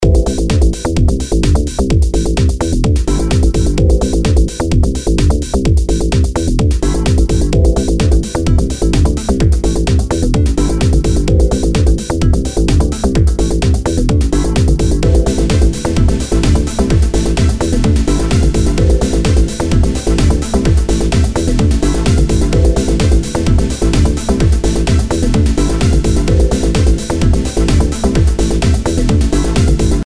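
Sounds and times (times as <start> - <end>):
simple background music loop: 0.0 - 30.0.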